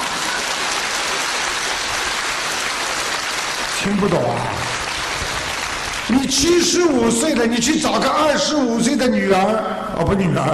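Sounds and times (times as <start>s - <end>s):
audience applause after a joke: 0.0s - 7.2s
speech: 3.8s - 4.7s, 6.1s - 10.5s.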